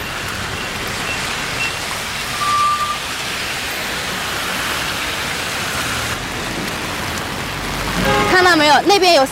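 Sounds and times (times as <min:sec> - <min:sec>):
low traffic rumble: 0:00.0 - 0:09.3
rain hissing over a busy street near a primary school: 0:00.0 - 0:09.3
speech: 0:08.6 - 0:09.3.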